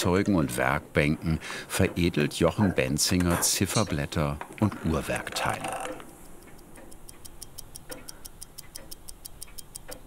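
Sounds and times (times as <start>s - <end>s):
speech: 0.0s - 6.0s
soft room noise: 0.0s - 10.0s
clocks ticking in a watch manufactory workshop in Pforzheim: 3.7s - 10.0s.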